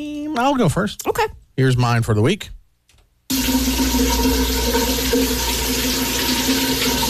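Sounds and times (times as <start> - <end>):
speech: 0.0 - 2.6, 3.3 - 7.0
shower water spraying: 3.3 - 7.0.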